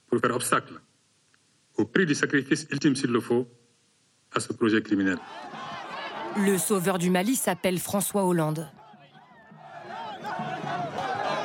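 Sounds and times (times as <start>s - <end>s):
speech: 0.1s - 0.9s, 1.8s - 3.6s, 4.3s - 8.8s
crowd chanting praises and cheering outdoors in the street: 5.2s - 11.4s.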